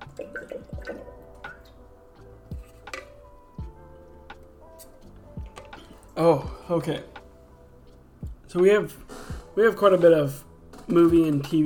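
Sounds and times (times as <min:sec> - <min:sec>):
person sipping water with wet gulping swallows: 0:00.2 - 0:01.1
speech: 0:00.2 - 0:01.7, 0:06.2 - 0:07.2, 0:08.5 - 0:11.6.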